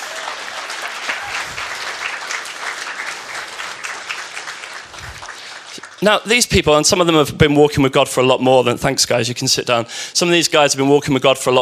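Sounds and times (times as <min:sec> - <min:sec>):
audience applause: 0:00.0 - 0:06.3
speech: 0:06.0 - 0:11.6.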